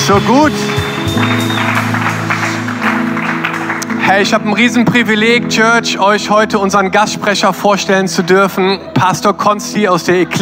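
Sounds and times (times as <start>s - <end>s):
audience applause during a church service: 0.0s - 4.9s
sustained music chords during a church service: 0.0s - 6.0s
speech: 0.1s - 2.1s, 4.1s - 10.4s.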